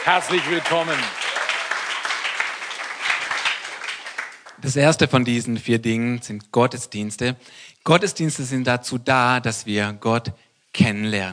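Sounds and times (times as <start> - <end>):
speech: 0.0 - 1.2, 4.6 - 11.3
audience applauding: 0.0 - 4.8.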